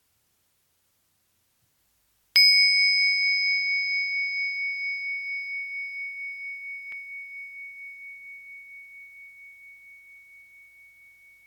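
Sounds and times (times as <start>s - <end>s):
meditation bell struck once and ringing: 2.4s - 11.4s.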